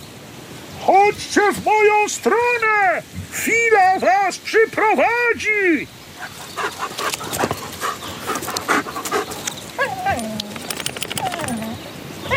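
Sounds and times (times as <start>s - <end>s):
speech: 1.1s - 7.6s
tired dog panting: 6.2s - 11.7s.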